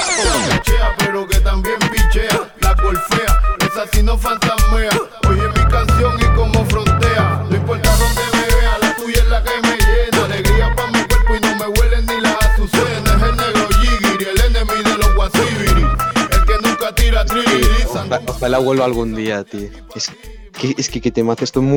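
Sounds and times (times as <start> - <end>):
song with thumping beat, bass and layered instruments: 0.1 - 21.7
speech: 3.8 - 5.6, 18.1 - 21.7.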